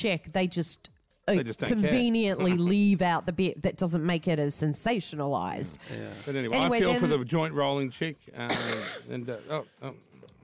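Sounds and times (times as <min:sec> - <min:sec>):
speech: 0:00.0 - 0:10.1
person coughing and clearing throat: 0:08.5 - 0:09.2.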